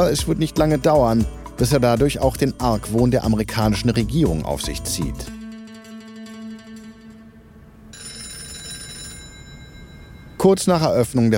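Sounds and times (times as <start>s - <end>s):
speech: 0.0s - 5.4s, 10.4s - 11.3s
office telephone ringing with a trilling bell tone: 7.9s - 10.6s.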